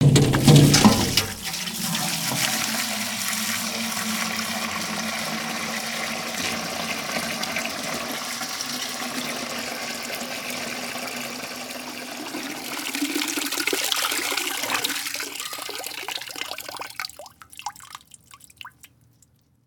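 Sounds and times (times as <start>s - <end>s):
bucket in a house: 0.0s - 19.4s.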